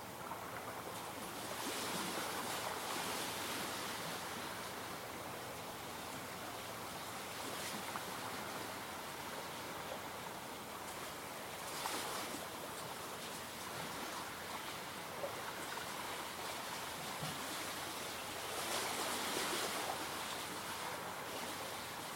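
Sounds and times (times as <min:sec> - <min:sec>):
small waves lapping against a stony lakeshore: 0:00.2 - 0:22.1.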